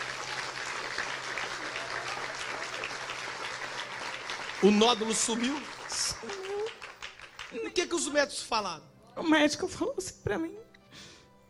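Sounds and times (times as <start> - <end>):
crowd applauding: 0.0 - 8.2
speech: 4.6 - 6.4, 7.5 - 11.1.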